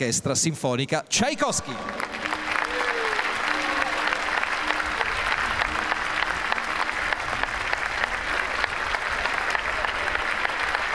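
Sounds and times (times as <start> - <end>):
speech: 0.0 - 2.2
faint voices and cheers: 1.4 - 10.9
loud sustained applause from a large audience: 1.4 - 10.9.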